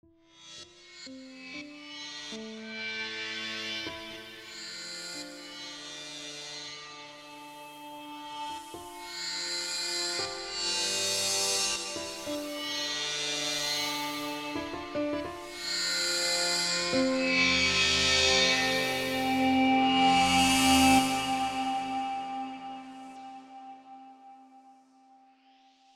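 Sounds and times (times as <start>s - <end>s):
horror piano: 7.2s - 25.7s.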